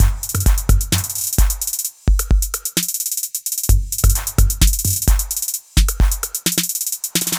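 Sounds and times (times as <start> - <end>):
130 BPM trap beat with 808 bass: 0.0 - 2.9, 3.7 - 6.6.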